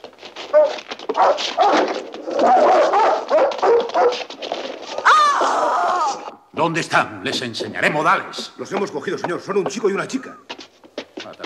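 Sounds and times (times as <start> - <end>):
several dogs barking and yelping excitedly: 0.4 - 5.1
speech: 1.2 - 4.4, 6.6 - 10.5.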